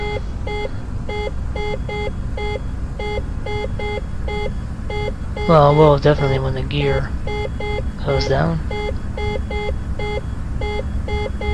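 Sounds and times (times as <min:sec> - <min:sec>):
aircraft cockpit warning alarm beeping in short tonal pulses: 0:00.0 - 0:11.5
constant low engine-like rumble in an aircraft: 0:00.0 - 0:11.5
speech: 0:05.5 - 0:07.2, 0:08.0 - 0:08.8.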